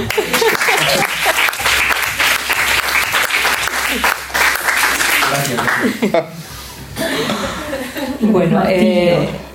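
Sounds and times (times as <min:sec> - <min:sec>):
people chuckling: 0:00.0 - 0:02.5, 0:03.4 - 0:08.8
loud applause from a small group: 0:00.0 - 0:05.9
speech: 0:06.0 - 0:06.5, 0:07.2 - 0:09.4.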